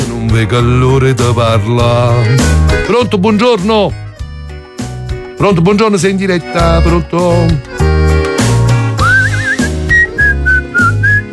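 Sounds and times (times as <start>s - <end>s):
rhythmic music with a thumping beat: 0.0s - 11.3s
speech: 0.3s - 4.0s, 5.4s - 7.8s
person whistling a lively tune with a warbling trill: 9.0s - 11.3s.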